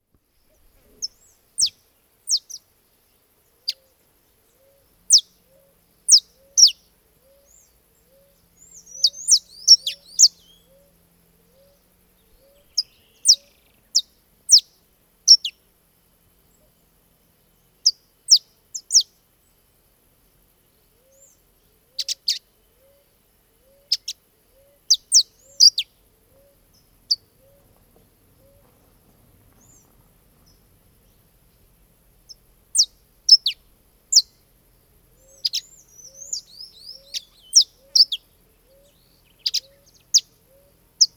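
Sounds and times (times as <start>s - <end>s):
canario da terra singing: 0.9s - 2.6s, 3.6s - 15.6s, 17.6s - 19.1s, 22.0s - 23.0s, 23.7s - 27.7s, 32.3s - 34.4s, 35.2s - 41.1s.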